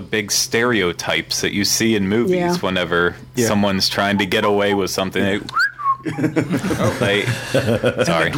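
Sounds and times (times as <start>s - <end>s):
speech: 0.0s - 8.3s
person whistling a downward sliding note: 4.2s - 4.9s, 5.5s - 6.1s
person chuckling and laughing: 4.2s - 8.1s.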